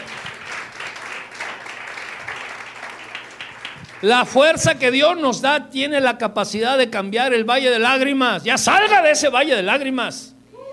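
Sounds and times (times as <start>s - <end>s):
crowd applauding: 0.0s - 4.5s
speech: 4.0s - 10.3s.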